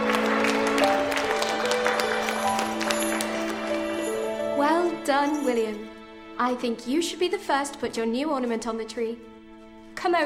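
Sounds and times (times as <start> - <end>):
class of children clapping in a classroom: 0.0 - 4.5
speech: 5.2 - 9.3, 10.0 - 10.2.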